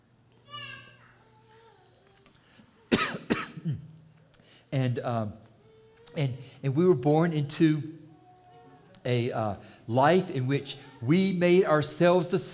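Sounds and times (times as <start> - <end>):
person coughing from a tickle in the throat: 2.9 - 3.9
speech: 4.7 - 5.4, 6.1 - 8.0, 9.0 - 12.5.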